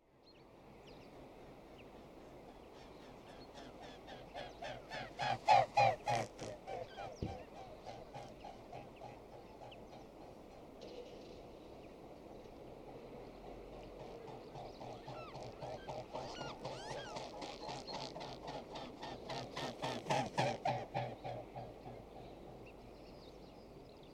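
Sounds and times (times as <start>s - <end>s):
mute swan calling: 3.6s - 10.7s, 14.3s - 21.8s.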